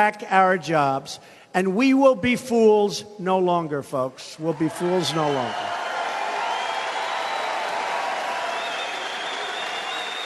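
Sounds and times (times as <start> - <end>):
speech: 0.0 - 5.8
large crowd at a political rally cheering and applauding: 4.6 - 10.2.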